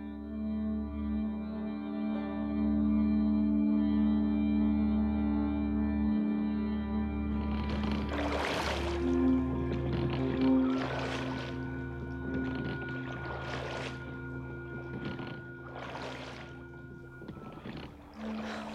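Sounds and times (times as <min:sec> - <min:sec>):
low steady drone: 0:00.0 - 0:18.7
oars of a rowed boat splashing in river water: 0:07.3 - 0:18.7.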